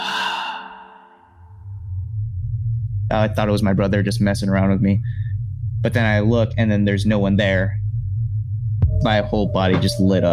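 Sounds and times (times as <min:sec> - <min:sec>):
voice imitating someone breathing out: 0:00.0 - 0:01.3, 0:05.0 - 0:05.4
low steady rumble: 0:01.4 - 0:10.3
speech: 0:03.1 - 0:05.2, 0:05.8 - 0:07.8, 0:09.0 - 0:10.3.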